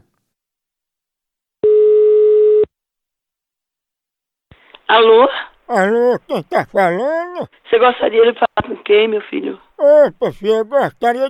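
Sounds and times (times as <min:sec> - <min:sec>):
phone ringback tone while a call is being placed: 0:01.6 - 0:02.7
speech: 0:04.9 - 0:11.2.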